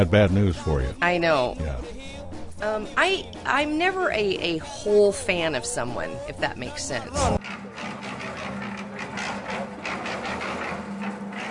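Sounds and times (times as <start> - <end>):
speech: 0.0 - 2.0, 2.6 - 7.6
washing machine running at the end of its cycle: 7.4 - 11.5.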